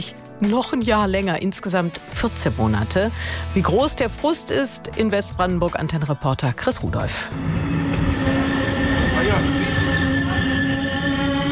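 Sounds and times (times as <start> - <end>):
speech: 0.0 - 8.0
regional express train rolling into a station: 7.3 - 11.4.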